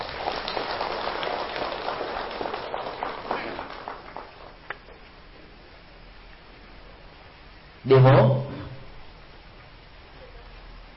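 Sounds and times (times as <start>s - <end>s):
audience applause: 0.0s - 5.0s
speech: 7.9s - 8.5s.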